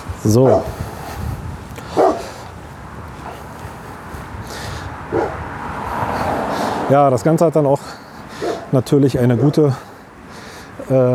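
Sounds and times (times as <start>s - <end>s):
speech: 0.2s - 0.8s, 6.9s - 8.0s, 8.7s - 9.9s, 10.9s - 11.1s
dog barking: 0.4s - 0.8s, 1.9s - 2.4s, 5.1s - 5.4s, 8.4s - 9.6s.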